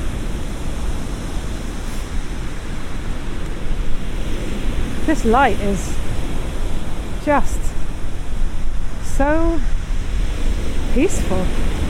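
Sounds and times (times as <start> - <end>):
sea waves washing against the shore: 0.0 - 11.8
wind: 0.0 - 11.8
speech: 5.1 - 6.0, 7.2 - 7.6, 9.2 - 9.7, 10.9 - 11.8.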